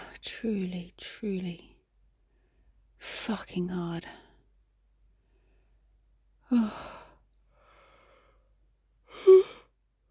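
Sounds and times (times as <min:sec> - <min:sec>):
speech: 0:00.4 - 0:01.7, 0:03.2 - 0:04.2, 0:06.5 - 0:07.0
person yawning with low voiced groan: 0:09.2 - 0:09.6.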